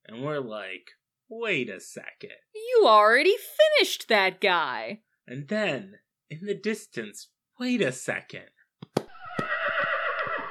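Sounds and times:
speech: 0.3s - 8.6s
horse whinnying in a long wavering neigh: 9.1s - 10.5s.

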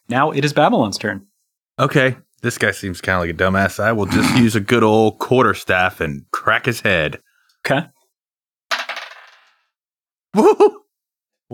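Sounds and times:
speech: 0.1s - 8.0s, 10.3s - 10.8s
excited vocal outburst: 4.0s - 4.5s
dice rolling on a hard table: 8.7s - 9.6s.

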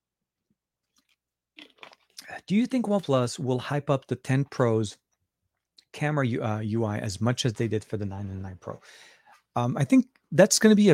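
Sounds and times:
person sipping a drink: 0.9s - 2.4s
speech: 2.4s - 5.0s, 6.0s - 10.9s.

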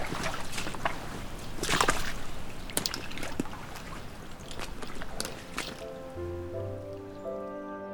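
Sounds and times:
person in waders wading through deep floodwater: 0.0s - 7.8s.

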